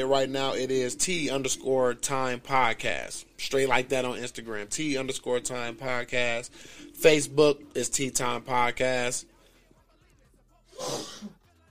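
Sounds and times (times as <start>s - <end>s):
speech: 0.0s - 9.3s, 10.8s - 11.4s
sneeze: 10.8s - 11.4s.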